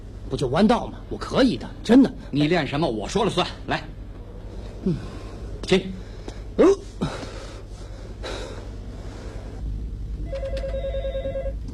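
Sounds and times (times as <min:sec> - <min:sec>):
speech: 0:00.3 - 0:04.0, 0:04.8 - 0:06.0, 0:06.6 - 0:07.1
telephone ringing with electronic trilling tones: 0:10.2 - 0:11.6.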